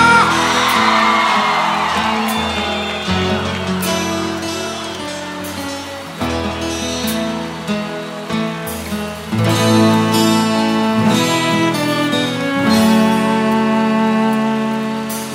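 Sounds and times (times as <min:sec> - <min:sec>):
crowd shouting and whooping: 0:00.0 - 0:08.2
loud live band music: 0:00.0 - 0:15.3.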